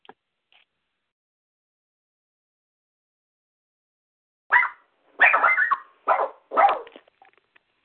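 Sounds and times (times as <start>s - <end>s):
dog barking: 4.5s - 7.0s.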